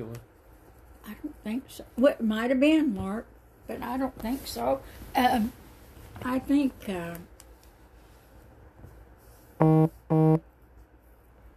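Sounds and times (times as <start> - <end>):
quiet hum: 0.0 - 11.5
speech: 1.5 - 5.6, 6.2 - 7.3, 9.6 - 10.5
phone notification buzzy honks: 9.6 - 10.4.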